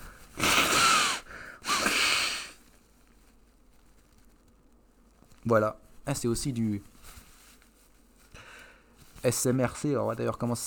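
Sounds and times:
person blowing nose into tissues: 0.0 - 2.6
speech: 5.4 - 6.9, 9.2 - 10.6.

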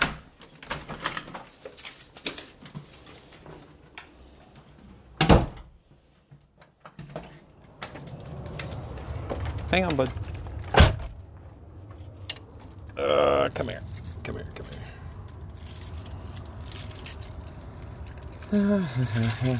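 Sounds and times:
keys jangling and rattling: 0.2 - 3.8, 8.0 - 9.8, 11.8 - 19.5
back door opening with a sharp loud clunk: 7.0 - 11.2
speech: 9.7 - 10.2, 13.5 - 14.8, 18.5 - 19.5.

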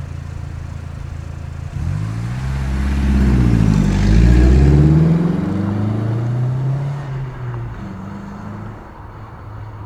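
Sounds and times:
banged-up Fiat small car starting, revving and driving away: 0.0 - 9.8.

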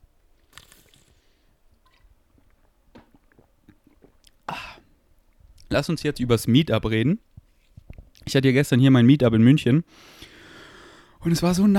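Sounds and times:
person sipping a pink drink: 0.5 - 4.9
swallow: 1.9 - 4.9
speech: 5.7 - 7.3, 8.3 - 10.2, 11.2 - 11.7.

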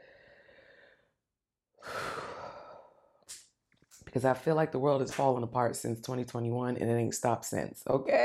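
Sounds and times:
deep breathing: 0.0 - 1.2, 1.8 - 3.2
speech: 4.2 - 8.2.

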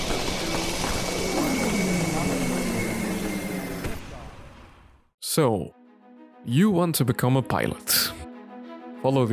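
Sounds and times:
rocket main engines roaring at launch: 0.0 - 5.0
speech: 5.3 - 5.8, 6.4 - 8.2, 9.0 - 9.3.

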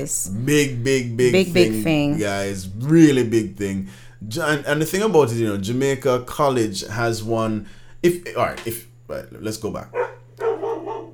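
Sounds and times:
speech: 0.0 - 10.1
steady low electrical hum: 0.0 - 11.1
dog barking outside: 9.9 - 11.1.

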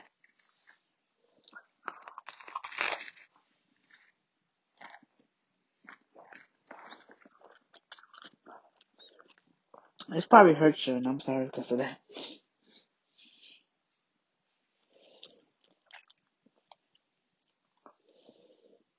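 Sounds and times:
crunchy bites and chewing on a grilled sandwich with homemade bread: 0.0 - 4.2, 4.8 - 10.0, 15.1 - 18.6
speech: 10.1 - 12.0.

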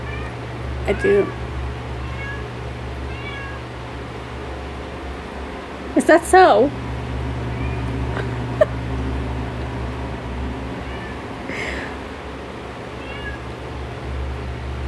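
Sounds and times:
female cat meowing: 0.0 - 1.4, 2.0 - 3.7, 7.5 - 8.0, 10.8 - 11.2, 12.9 - 13.6
steady low hum: 0.0 - 14.8
speech: 0.9 - 1.4, 6.0 - 6.8.

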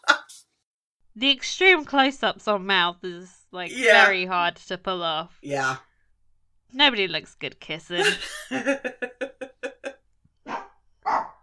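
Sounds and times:
speech: 1.2 - 5.9, 6.7 - 9.8
laughter: 8.0 - 9.9
dog barking: 10.4 - 11.4.

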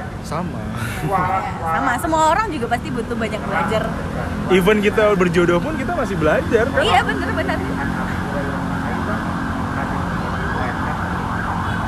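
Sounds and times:
street and traffic noise: 0.0 - 11.8
speech: 0.3 - 8.0
ambulance siren wailing outside: 2.9 - 11.8.

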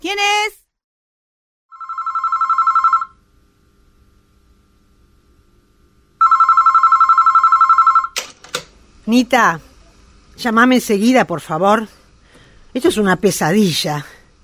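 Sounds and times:
mobile phone ringing: 1.7 - 3.2, 6.2 - 8.2
speech: 9.1 - 9.7, 10.4 - 12.0, 12.7 - 14.1.

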